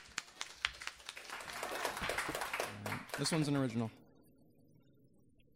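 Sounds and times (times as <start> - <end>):
small audience applause after a performance: 0.0 - 3.9
speech: 3.2 - 4.0.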